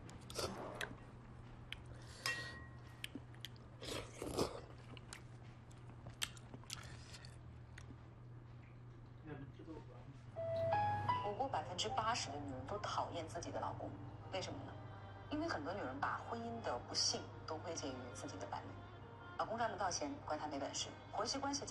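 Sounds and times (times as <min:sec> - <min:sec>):
low steady hum: 0:00.0 - 0:21.7
chewing on spare ribs: 0:02.9 - 0:09.2
speech: 0:11.9 - 0:18.8, 0:19.4 - 0:21.7.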